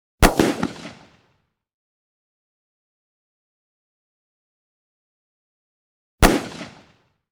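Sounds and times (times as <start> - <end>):
.357 Magnum pistol blasts: 0.2 - 1.2, 6.2 - 6.9.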